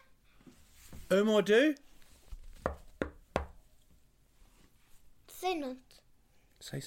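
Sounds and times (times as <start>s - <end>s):
speech: 1.1s - 1.9s, 5.5s - 5.9s, 6.7s - 6.8s
sharp knocks on a door: 2.6s - 3.6s.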